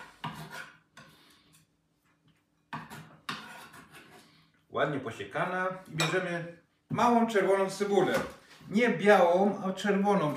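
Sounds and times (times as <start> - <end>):
chopped leek scraped into a small bowl: 0.0 - 1.3, 2.8 - 4.4
speech: 4.8 - 10.3.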